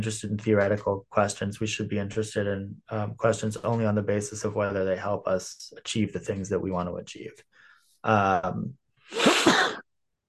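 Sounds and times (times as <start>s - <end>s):
speech: 0.0s - 9.8s
person sneezing: 9.1s - 9.8s.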